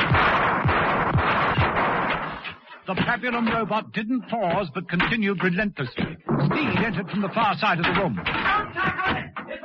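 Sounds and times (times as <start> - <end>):
automatic pistol fired at point blank: 0.0 - 2.6
speech: 2.9 - 9.3.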